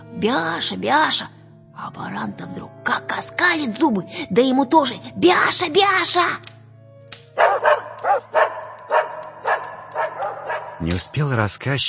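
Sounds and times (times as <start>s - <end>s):
speech: 0.2s - 6.5s, 10.8s - 11.8s
two dogs barking frantically: 7.4s - 11.2s.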